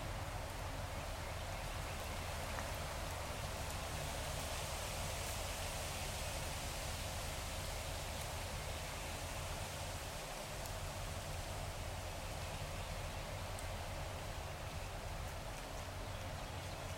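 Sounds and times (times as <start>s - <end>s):
wind rushing through trees on the Conecuh River Nature Trail in Florida: 0.0s - 16.9s.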